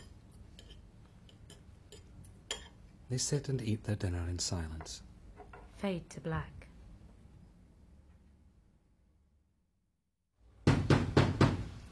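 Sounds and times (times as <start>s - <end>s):
speech: 3.1s - 5.1s, 5.8s - 6.6s
heavy bangs on a front door: 10.7s - 11.7s.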